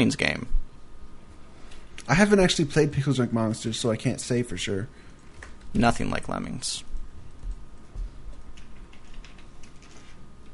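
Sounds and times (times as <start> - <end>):
speech: 0.0 - 0.6, 2.1 - 5.0, 5.7 - 6.9
typing on a computer keyboard: 8.3 - 10.2.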